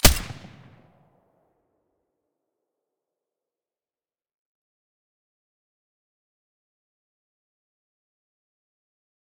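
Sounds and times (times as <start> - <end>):
MDR weapon gunshots with silencer: 0.0 - 0.8.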